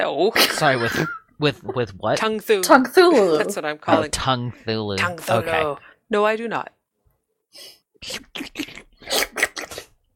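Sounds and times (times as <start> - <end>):
speech: 0.0 - 6.8, 7.5 - 9.5
laughter: 0.5 - 2.2
wet mouth slurping: 8.0 - 10.0.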